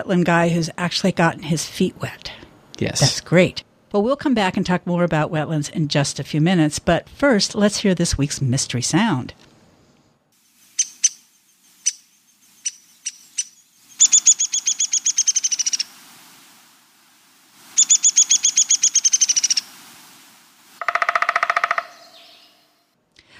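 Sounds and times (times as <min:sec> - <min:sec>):
speech: 0:00.0 - 0:09.5
resident feeder birds chirping and trilling: 0:10.7 - 0:15.9, 0:17.8 - 0:19.7, 0:20.8 - 0:22.8.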